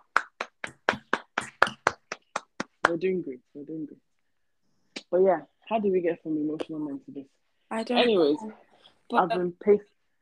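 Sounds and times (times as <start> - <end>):
hands clapping: 0.0 - 3.1
speech: 2.9 - 4.1, 5.1 - 9.9.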